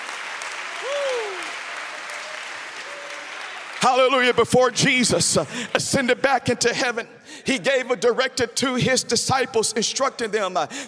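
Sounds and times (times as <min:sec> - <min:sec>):
audience clapping hands: 0:00.0 - 0:04.5
person cheering or whooping: 0:00.8 - 0:03.3
speech: 0:03.9 - 0:10.8.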